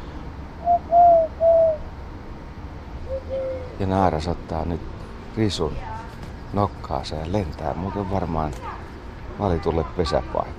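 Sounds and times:
man whistling and hooting imitating a bird's call: 0:00.6 - 0:01.8
speech: 0:03.8 - 0:05.9, 0:06.5 - 0:08.8, 0:09.4 - 0:10.5.

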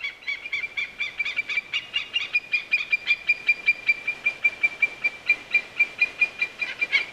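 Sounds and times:
white-tailed eagle yelping calls: 0:00.0 - 0:07.1.

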